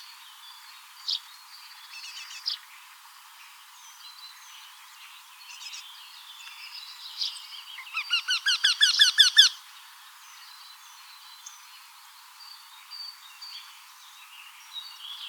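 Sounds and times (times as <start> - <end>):
Eurasian wryneck nasal repeated quee notes: 7.8 - 9.6.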